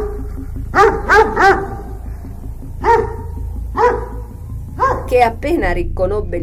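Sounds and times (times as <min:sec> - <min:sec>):
dog barking fiercely: 0:00.0 - 0:02.0, 0:02.8 - 0:05.1
low rumbling background: 0:00.0 - 0:06.4
speech: 0:05.1 - 0:06.4.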